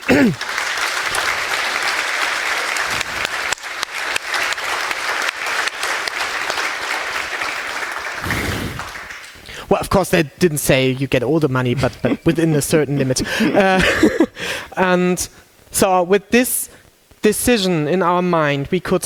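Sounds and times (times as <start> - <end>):
crowd applauding: 0.0 - 9.6
speech: 0.1 - 0.6, 9.8 - 19.0
laughter: 11.8 - 14.4.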